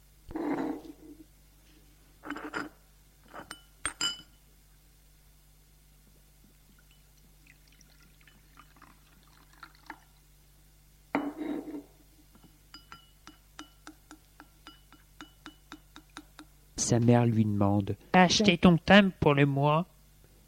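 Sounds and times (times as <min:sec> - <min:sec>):
quick light drips and trickles with a faint ringing tone: 0:06.7 - 0:10.0
coffee poured from pot into ceramic bowl: 0:06.7 - 0:10.2
speech: 0:16.9 - 0:19.9.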